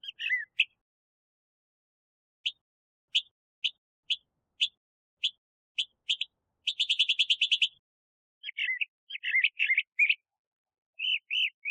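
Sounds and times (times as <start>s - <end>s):
Northern mockingbird Mimus polyglottos song: 0.0s - 0.8s, 2.4s - 7.8s, 8.4s - 10.3s, 11.0s - 11.7s.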